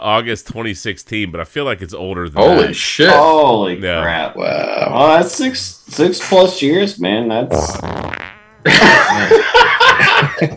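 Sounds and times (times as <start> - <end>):
speech: 0.0 - 9.4
buzzy drawn-out fart with a falling pitch: 7.5 - 8.9
laughter: 8.6 - 10.5.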